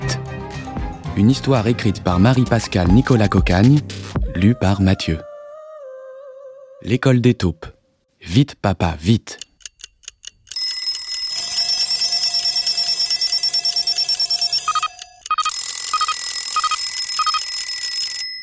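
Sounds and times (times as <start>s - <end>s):
speech: 1.2s - 5.3s, 6.8s - 9.5s
alarm clock ticking: 9.4s - 18.4s
mechanical alarm clock bells ringing: 10.5s - 18.4s.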